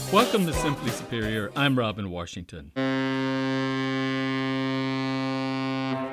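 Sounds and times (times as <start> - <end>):
speech: 0.1 - 2.8
ship's horn blasting in a harbor: 2.8 - 6.1.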